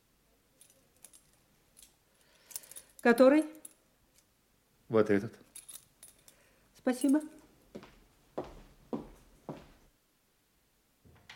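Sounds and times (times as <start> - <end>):
small bunch of keys jingling as handed over: 0.6 - 3.8, 5.4 - 7.4
speech: 3.0 - 3.6, 4.9 - 5.5, 6.8 - 7.4.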